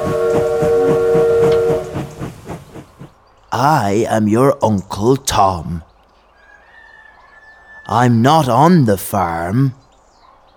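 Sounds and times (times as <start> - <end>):
train whistle blowing: 0.0 - 2.4
train chugging on rails: 0.0 - 3.9
speech: 3.6 - 5.9, 7.9 - 9.8.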